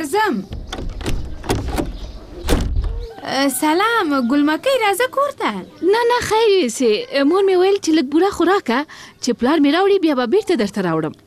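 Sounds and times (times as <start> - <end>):
door being opened: 0.5 - 3.1
speech: 3.3 - 11.2.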